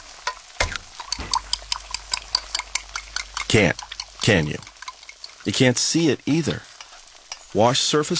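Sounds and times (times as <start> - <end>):
kitchen clock ticking steadily: 0.0 - 7.5
speech: 3.5 - 4.7, 5.4 - 6.7, 7.5 - 8.1.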